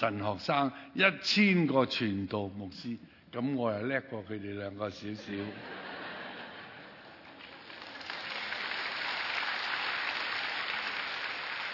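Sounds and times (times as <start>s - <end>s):
speech: 0.0s - 5.9s
laughter: 5.3s - 7.4s
crowd clapping: 7.1s - 11.7s.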